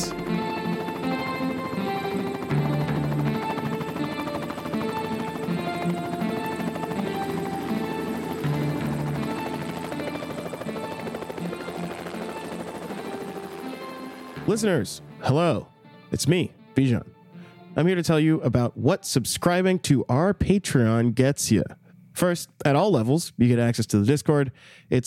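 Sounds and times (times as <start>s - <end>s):
helicopter engine whine: 0.0s - 15.2s
speech: 14.5s - 17.1s, 17.8s - 25.0s.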